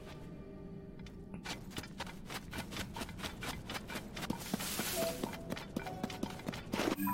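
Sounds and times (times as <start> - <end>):
skeleton horses trotting in a video game: 1.5 - 7.0.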